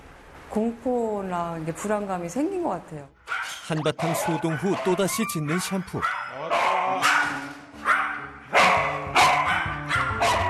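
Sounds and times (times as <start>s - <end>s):
faint hum: 0.0s - 6.2s
speech: 0.5s - 6.7s
dog barking: 3.2s - 10.4s.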